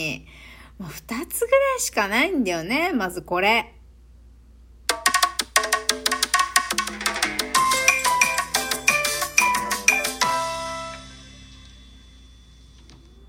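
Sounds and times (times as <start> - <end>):
speech: 0.0 - 3.8
bouncy playful pop jingle with percussive hits and bell-like tones: 4.9 - 11.5.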